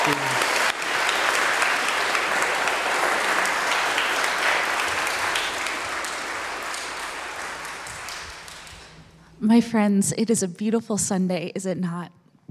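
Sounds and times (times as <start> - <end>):
congregation applauding: 0.0 - 9.2
speech: 0.1 - 0.3, 9.4 - 12.2.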